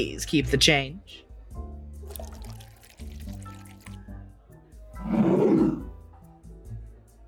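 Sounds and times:
speech: 0.0 - 1.2
Irish whiskey poured into a glass: 2.1 - 4.2.

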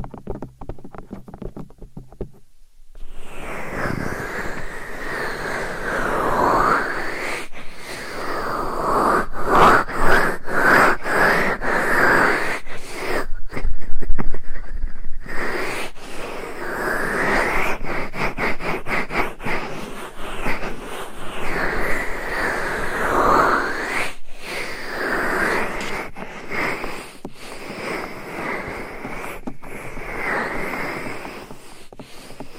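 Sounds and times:
tapping: 0.0 - 2.5
scratching and rubbing against a binaural microphone: 0.0 - 32.5.

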